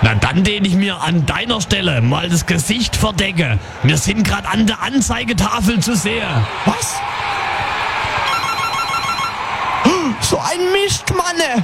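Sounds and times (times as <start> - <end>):
loud noise: 0.0 - 11.6
speech: 0.4 - 7.3, 10.2 - 11.6
telephone ringing: 8.3 - 9.4.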